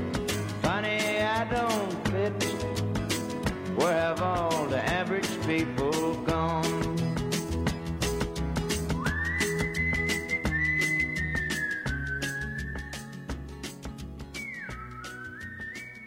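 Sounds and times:
full band accompaniment with a regular beat: 0:00.0 - 0:16.0
speech: 0:03.8 - 0:06.8
bright whistled melody in a played song: 0:08.7 - 0:16.0.

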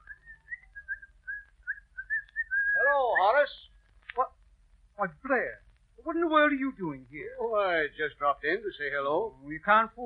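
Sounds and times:
man whistling a cheerful tune coming down the stairs: 0:00.0 - 0:02.9
speech: 0:06.2 - 0:10.0.

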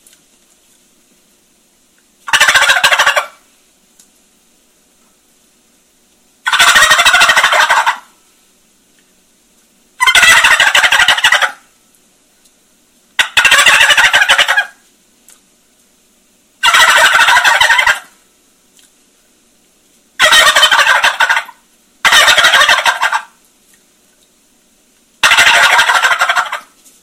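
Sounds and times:
rattling turkey gobbles imitated on a tube call: 0:02.2 - 0:03.4, 0:06.4 - 0:08.1, 0:10.0 - 0:11.6, 0:13.2 - 0:14.8, 0:16.6 - 0:18.2, 0:20.2 - 0:23.4, 0:25.2 - 0:26.8.

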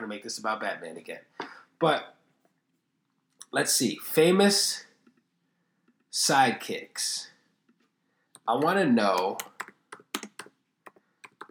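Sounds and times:
speech: 0:00.1 - 0:02.2, 0:03.5 - 0:04.9, 0:06.1 - 0:07.3, 0:08.5 - 0:09.5
crisp computer keyboard typing: 0:09.2 - 0:11.5.

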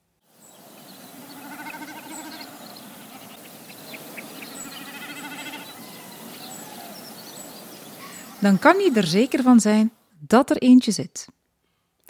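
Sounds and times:
insects: 0:00.3 - 0:09.9
other birds: 0:00.3 - 0:09.9
frogs: 0:01.0 - 0:09.4
common snipe making bleat-like bursts: 0:01.3 - 0:03.6, 0:04.5 - 0:07.0, 0:08.0 - 0:09.5
speech: 0:08.4 - 0:11.4.

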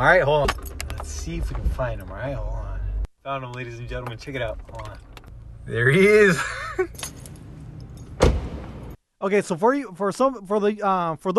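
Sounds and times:
speech: 0:00.0 - 0:02.6, 0:03.2 - 0:07.2, 0:09.2 - 0:11.3
keys jangling: 0:06.9 - 0:08.2
car door shutting: 0:07.0 - 0:09.0.

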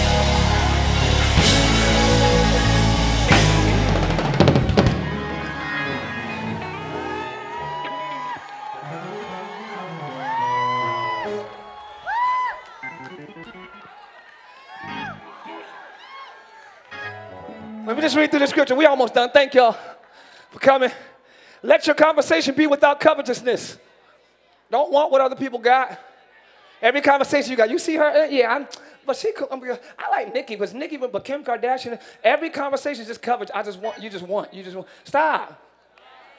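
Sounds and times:
large crowd screaming and cheering: 0:00.0 - 0:18.9
speech: 0:18.1 - 0:19.9, 0:20.5 - 0:23.9, 0:24.7 - 0:26.1, 0:26.8 - 0:35.6.

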